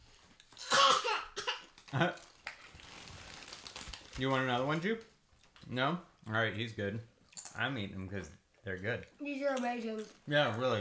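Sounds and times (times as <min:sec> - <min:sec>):
harsh bursting coughs: 0:00.6 - 0:01.7
speech: 0:01.9 - 0:02.2, 0:04.2 - 0:05.1, 0:05.7 - 0:10.8.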